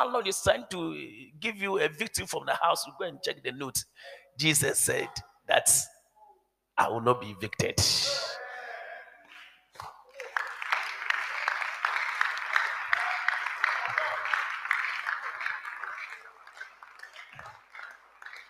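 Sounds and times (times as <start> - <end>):
speech: 0.0 - 5.9, 6.8 - 8.4
audience clapping: 9.3 - 18.4.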